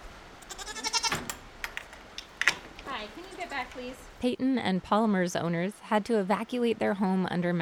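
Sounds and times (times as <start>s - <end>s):
pygmy goat bleating in a vacant aviary on a farm: 0.4s - 1.3s
speech: 3.1s - 7.5s.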